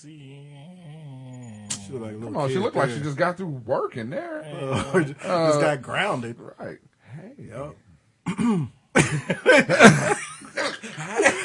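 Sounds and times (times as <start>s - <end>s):
speech: 0.0s - 0.7s, 1.9s - 10.2s
laughter: 4.6s - 5.5s, 9.0s - 11.4s
man clearing his throat: 8.3s - 9.3s.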